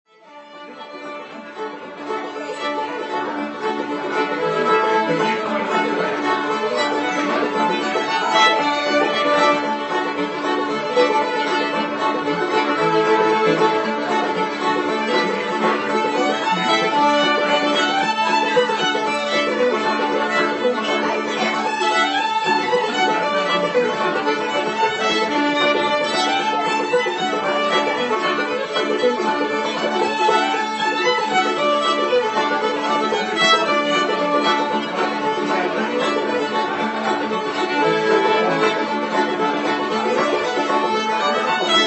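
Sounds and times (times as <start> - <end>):
fiddle playing a hornpipe: 0.0 - 41.8
banjo playing a hornpipe: 0.3 - 41.8.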